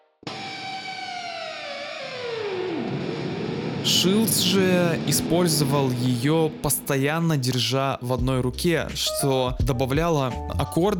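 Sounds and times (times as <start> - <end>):
distorted electric guitar note bent down with tremolo arm: 0.2 - 7.7
speech: 3.8 - 10.9.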